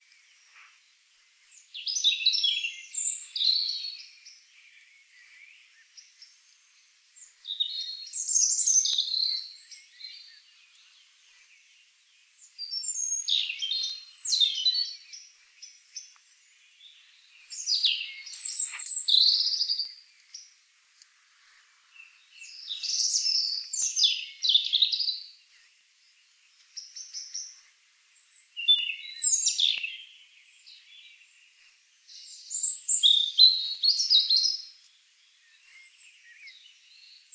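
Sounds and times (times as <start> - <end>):
European robin singing: 0.0 - 37.3.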